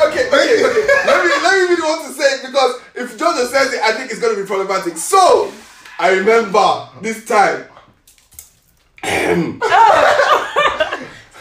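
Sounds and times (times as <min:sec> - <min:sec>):
laughter: 0:00.0 - 0:02.1, 0:09.6 - 0:11.3
speech: 0:03.5 - 0:07.7, 0:09.0 - 0:10.5
man clearing his throat loudly: 0:09.0 - 0:09.6.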